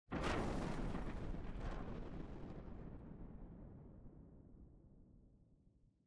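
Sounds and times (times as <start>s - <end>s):
explosion debris: 0.1s - 3.7s.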